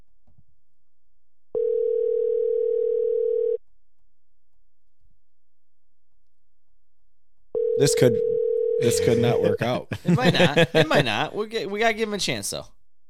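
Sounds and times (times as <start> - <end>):
outgoing phone call ringback tone: 1.6 - 3.6, 7.6 - 8.9
speech: 7.8 - 12.8
laughter: 8.8 - 11.4.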